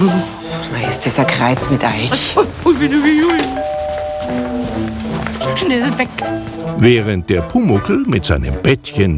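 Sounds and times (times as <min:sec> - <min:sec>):
speech: 0:00.0 - 0:03.7, 0:04.3 - 0:04.9, 0:05.5 - 0:09.1
doorbell chiming: 0:03.3 - 0:05.6.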